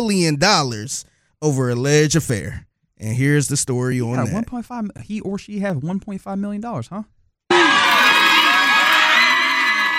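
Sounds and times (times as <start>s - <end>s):
speech: 0.0s - 7.8s
crowd of supporters cheering outside a courthouse: 7.5s - 9.9s
supporters' shouts, whoops and yelling voices outside a courthouse: 7.5s - 9.9s.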